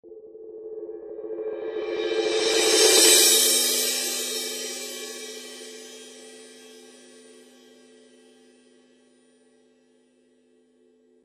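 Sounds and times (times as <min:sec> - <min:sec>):
solid crash cymbal: 0:01.6 - 0:07.9.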